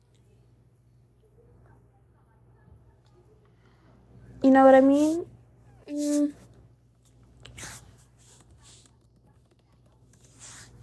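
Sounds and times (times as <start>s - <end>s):
speech: 4.5s - 5.3s, 5.9s - 6.4s
typing on a computer keyboard: 8.4s - 10.2s.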